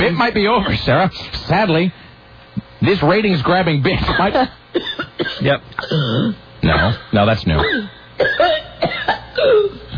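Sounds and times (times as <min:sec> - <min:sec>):
speech: 0:00.1 - 0:02.0, 0:02.6 - 0:09.8
harsh coughing: 0:04.0 - 0:09.9.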